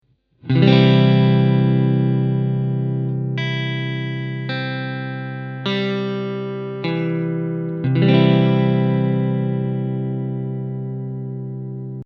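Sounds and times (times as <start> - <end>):
C chord on guitar: 0.5 - 12.0.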